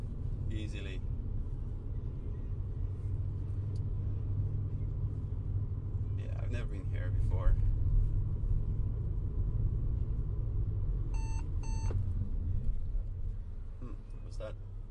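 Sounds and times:
steady low rumble of car road and engine noise: 0:00.0 - 0:14.8
speech: 0:00.5 - 0:01.2, 0:06.5 - 0:07.8, 0:14.4 - 0:14.7
car collision warning beeps: 0:11.2 - 0:12.0.

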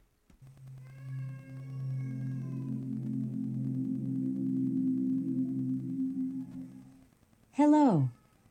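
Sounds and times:
Amazon Echo smart speaker power-on startup tone: 0:00.4 - 0:07.1
speech: 0:07.6 - 0:08.2.

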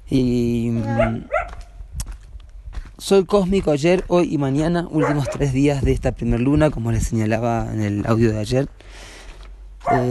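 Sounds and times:
speech: 0:00.1 - 0:01.4, 0:03.0 - 0:09.1, 0:09.8 - 0:10.0
puppies barking with high-pitched yaps: 0:00.8 - 0:01.8, 0:04.9 - 0:05.6, 0:09.8 - 0:10.0.

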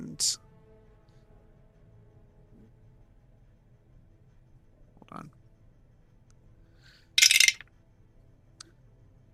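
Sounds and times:
speech: 0:00.2 - 0:00.4
dice tumbling across a hard tabletop in a tabletop game: 0:07.2 - 0:07.6.

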